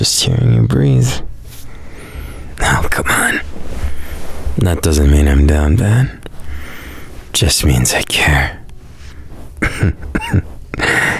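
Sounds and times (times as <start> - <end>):
speech: 0.0 - 1.3, 4.6 - 6.2, 7.4 - 8.6, 9.8 - 10.5
person with a mild cough and sensitive lungs coughing: 9.6 - 11.1.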